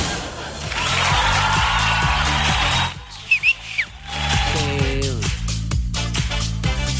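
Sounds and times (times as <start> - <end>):
bass-heavy music track: 0.0 - 6.9
person whistling short bright chirps: 3.2 - 4.0.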